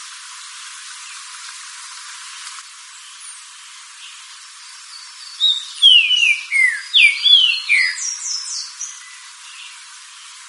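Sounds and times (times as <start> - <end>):
green-winged saltator whistling: 5.4 - 8.7.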